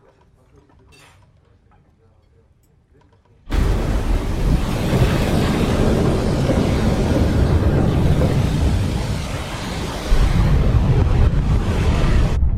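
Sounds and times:
stormy ocean waves around a ship at sea: 3.5 - 12.4.

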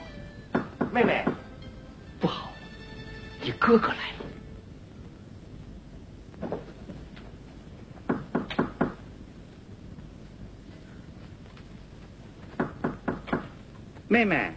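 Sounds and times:
low steady background: 0.0 - 14.5
knocking on a door during a Beijing opera stage performance: 0.5 - 1.5, 8.1 - 9.0, 12.6 - 13.5
speech: 1.0 - 1.4, 3.5 - 4.2, 14.1 - 14.5.

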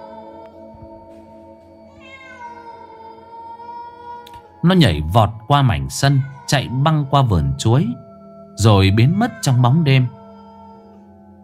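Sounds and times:
cat meowing beside a house at night: 1.9 - 4.4, 5.8 - 7.6, 8.6 - 10.9
speech: 4.6 - 8.0, 8.6 - 10.2.

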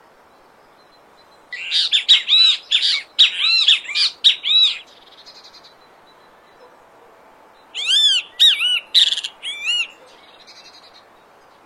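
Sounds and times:
great kiskadee calling: 1.5 - 5.6, 7.7 - 10.8.

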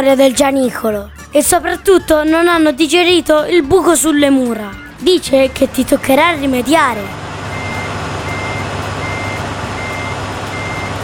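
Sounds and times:
speech: 0.0 - 7.2
truck engine rumble: 1.6 - 11.0
truck reversing warning beeper: 5.8 - 6.5, 7.4 - 11.0.

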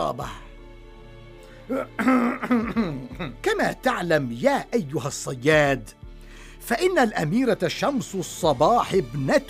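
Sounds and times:
speech: 0.0 - 0.4, 1.7 - 6.0, 6.6 - 9.4
man clearing his throat: 1.7 - 3.4
man coughing: 1.7 - 3.4.

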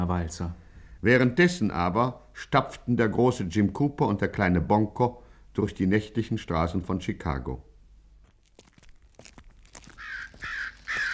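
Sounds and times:
speech: 0.0 - 7.7
crows cawing on a night-time city street in Chicago: 9.8 - 11.1.

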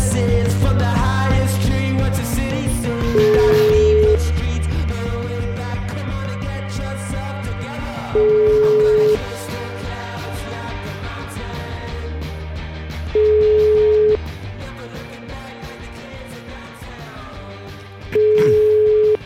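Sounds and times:
music with a busy mix of instruments: 0.0 - 19.2
mobile phone ringing: 8.2 - 9.2, 13.2 - 14.2, 18.2 - 19.2.

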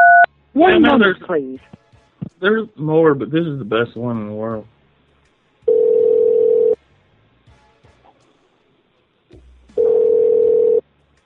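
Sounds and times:
telephone ringing tone on an outgoing call: 0.0 - 0.3, 5.7 - 6.8, 9.8 - 10.8
speech: 0.6 - 4.7.

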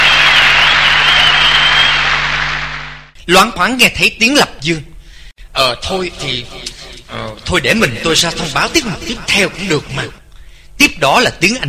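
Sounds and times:
applause after a song performance: 0.0 - 3.1
speech: 3.3 - 4.9, 5.6 - 10.2, 10.8 - 11.6.

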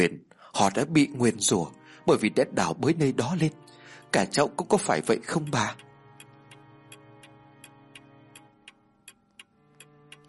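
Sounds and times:
speech: 0.0 - 5.9
clock ticking in a room: 4.7 - 10.2.

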